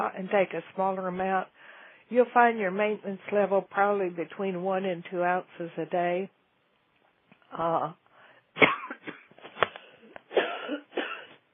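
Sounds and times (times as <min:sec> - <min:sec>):
speech: 0:00.0 - 0:06.4, 0:07.5 - 0:08.0
tickly coughing with raspy hacks: 0:08.6 - 0:11.4.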